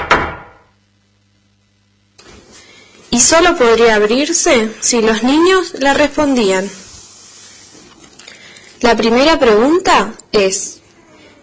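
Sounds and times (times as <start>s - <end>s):
heavy door banging shut with booming echo: 0.0s - 0.7s
rustling noise: 2.2s - 8.9s
speech: 3.2s - 6.8s, 8.9s - 10.8s.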